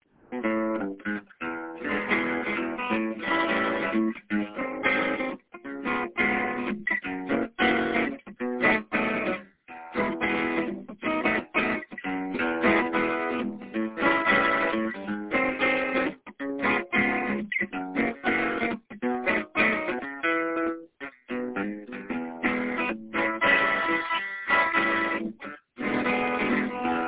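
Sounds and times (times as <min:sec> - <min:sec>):
western bluesy swing music: 0:00.4 - 0:27.0.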